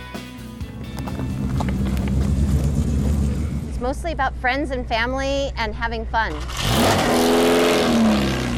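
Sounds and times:
race car engine revving on a track: 1.1s - 3.8s, 6.3s - 8.5s
speech: 3.9s - 7.4s.

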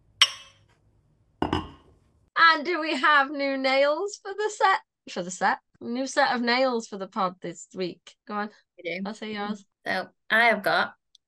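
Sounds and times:
glasses clinking together in a toast: 0.2s - 0.7s, 1.4s - 1.8s
speech: 2.5s - 11.0s.

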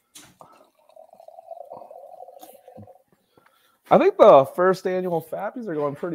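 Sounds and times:
beer pouring into a glass: 0.4s - 3.1s
speech: 3.9s - 6.1s.

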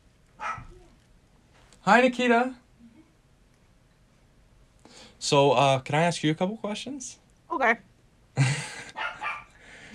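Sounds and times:
dog barking at the door: 0.4s - 0.9s, 8.9s - 9.6s
speech: 1.8s - 2.6s, 5.2s - 8.5s.

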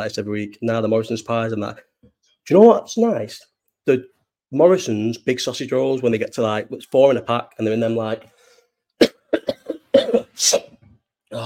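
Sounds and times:
speech: 0.0s - 1.9s, 2.5s - 8.4s, 10.4s - 10.7s
smoker's sharp dry hacking cough: 9.0s - 11.4s.

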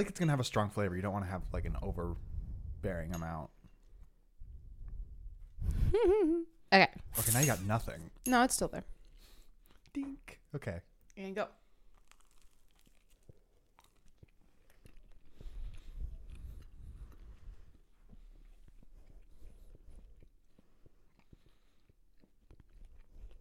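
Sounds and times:
speech: 0.0s - 3.6s, 5.6s - 8.9s, 10.0s - 11.6s
wet chewing and crunching of food: 11.0s - 23.3s.

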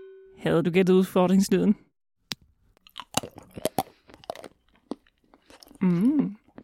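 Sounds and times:
speech: 0.4s - 1.9s
person biting and chewing chocolate with crisp crunching: 2.8s - 6.6s.

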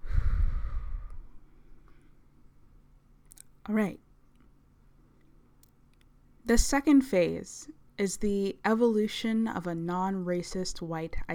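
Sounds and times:
deep breath in and out: 0.0s - 2.2s
speech: 3.7s - 4.0s, 6.5s - 11.3s.

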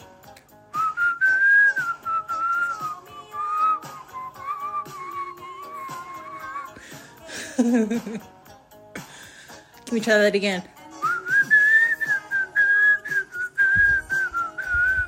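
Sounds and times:
person whistling a tune: 0.6s - 6.8s, 10.9s - 15.0s
laughter: 7.3s - 8.2s
speech: 7.6s - 8.4s, 9.9s - 10.8s.

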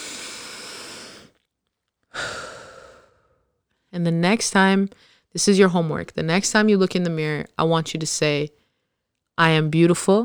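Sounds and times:
deep breath: 0.0s - 1.4s, 2.1s - 3.7s, 4.9s - 5.3s
speech: 4.0s - 8.6s, 9.4s - 10.2s.

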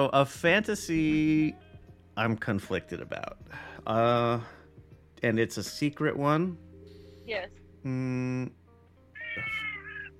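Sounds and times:
speech: 0.0s - 1.6s, 2.2s - 4.6s, 5.2s - 6.6s, 7.3s - 8.6s
cat meowing: 9.2s - 10.1s.

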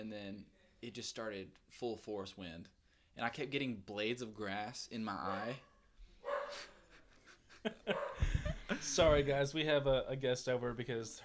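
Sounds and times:
speech: 0.0s - 5.7s, 7.6s - 8.0s, 8.8s - 11.2s
dog barking: 5.2s - 6.7s, 7.9s - 8.4s
dog yipping and whimpering: 5.3s - 5.6s
laughter: 6.5s - 9.5s.

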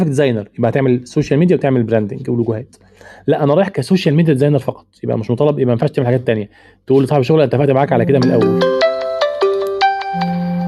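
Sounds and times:
speech: 0.0s - 8.9s
phone ringtone with bright rhythmic electronic melody: 8.0s - 10.6s.

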